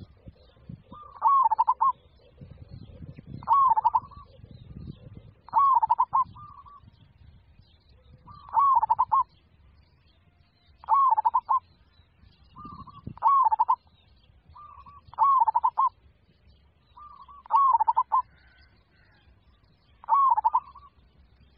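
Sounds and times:
zebra dove purring coo phrases: 0.0 - 6.8, 8.2 - 9.3, 10.8 - 11.6, 12.6 - 13.8, 14.6 - 16.0, 17.0 - 19.1, 20.0 - 21.0.

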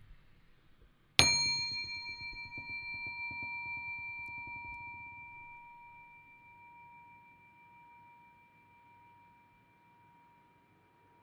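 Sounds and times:
meditation bell struck: 1.2 - 10.6.

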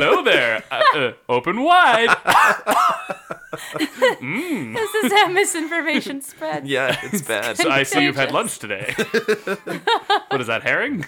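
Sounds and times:
laughter: 0.0 - 1.1, 1.8 - 10.7
speech: 0.0 - 11.0
person coughing raspy hacking coughs: 2.3 - 3.1.

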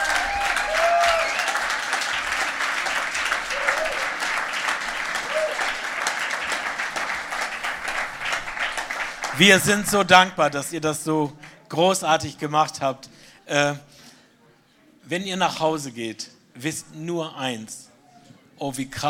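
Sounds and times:
faint whoops and cheers: 0.0 - 1.8, 3.3 - 4.3, 5.2 - 5.8
large audience applauding a band: 0.0 - 10.2
speech: 9.4 - 13.9, 15.1 - 17.9, 18.6 - 19.0.

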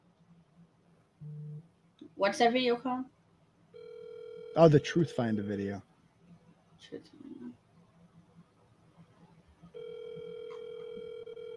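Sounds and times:
speech: 1.2 - 3.2, 4.6 - 5.9, 6.8 - 7.2
brief electronic phone dialing tones: 3.8 - 4.7, 9.8 - 11.5
loud steady telephone ringing tone: 3.8 - 5.2, 9.8 - 11.5.

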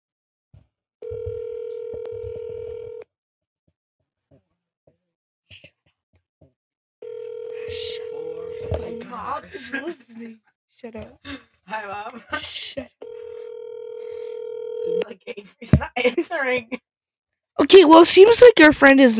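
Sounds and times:
telephone dial tone: 1.0 - 3.1, 7.0 - 9.2, 13.0 - 15.0
speech: 9.8 - 13.0, 14.9 - 16.9, 17.6 - 19.1.

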